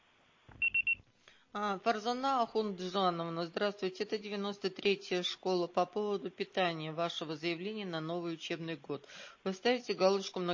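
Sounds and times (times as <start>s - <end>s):
voicemail beep tone on a phone call: 0.6s - 1.0s
speech: 1.5s - 10.5s.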